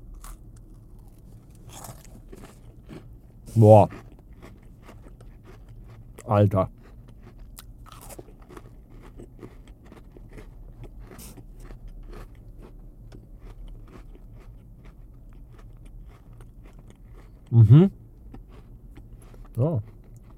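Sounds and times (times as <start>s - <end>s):
constant low hum: 0.0s - 20.3s
biting and chewing a Nutella cookie: 0.1s - 3.1s, 3.9s - 12.8s, 13.4s - 17.4s
speech: 3.6s - 4.1s, 6.3s - 6.8s, 17.8s - 18.0s.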